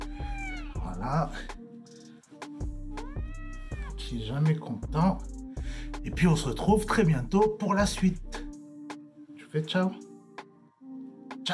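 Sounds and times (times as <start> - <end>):
cat meowing: 0.0 - 1.4, 2.9 - 4.0
speech: 1.0 - 1.6, 4.1 - 5.4, 6.0 - 8.3, 9.5 - 10.0.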